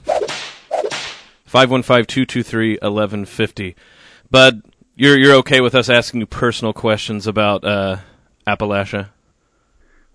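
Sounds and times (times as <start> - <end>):
whip crack sound effect: 0.0 - 1.4
speech: 1.5 - 9.2.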